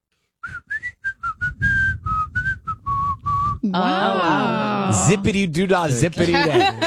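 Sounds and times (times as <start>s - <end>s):
person whistling a short melody: 0.4s - 3.6s
speech: 3.6s - 6.8s
laughter: 6.0s - 6.8s.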